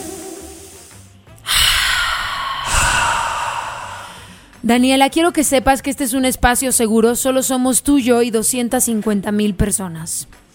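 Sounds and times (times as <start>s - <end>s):
long deep breath inhaled and exhaled: 1.4s - 4.6s
speech: 4.6s - 10.4s.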